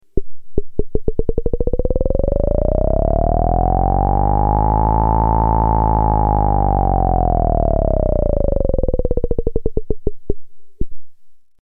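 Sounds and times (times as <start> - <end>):
synthesizer VCF modulation: 0.2 - 10.9.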